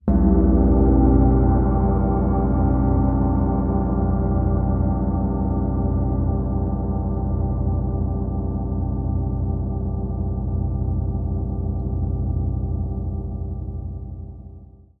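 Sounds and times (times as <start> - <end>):
cymbal gong ringtone: 0.0 - 14.7.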